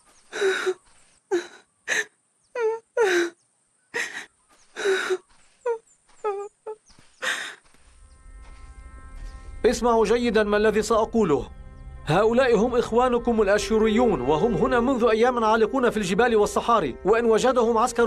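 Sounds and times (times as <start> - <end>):
Assyrian refugee woman crying: 0.4 - 3.4, 4.0 - 7.6
speech: 9.7 - 18.0.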